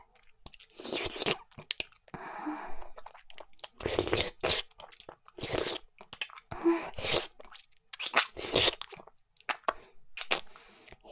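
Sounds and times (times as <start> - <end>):
chewing and eating meat: 0.2 - 2.2, 2.8 - 11.1.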